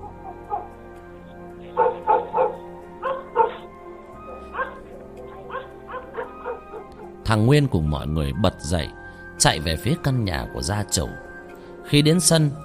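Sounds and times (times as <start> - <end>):
dog barking fiercely: 0.0 - 0.7, 1.8 - 3.7, 4.3 - 7.2
dog whimpering yelping as if injured: 0.0 - 0.8, 1.8 - 7.2
speech: 7.3 - 11.3, 11.9 - 12.6.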